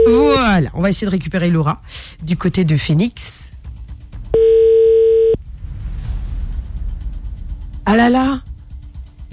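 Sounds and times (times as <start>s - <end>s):
speech: 0.1s - 3.5s, 7.9s - 8.5s
telephone ringing tone on an outgoing call: 4.4s - 5.4s.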